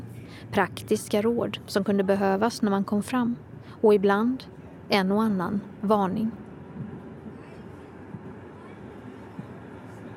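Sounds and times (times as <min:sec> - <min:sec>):
tram rolling on rails near the central station: 0:00.0 - 0:10.1
speech: 0:00.4 - 0:06.4
faint indistinct voices murmuring: 0:07.2 - 0:10.1.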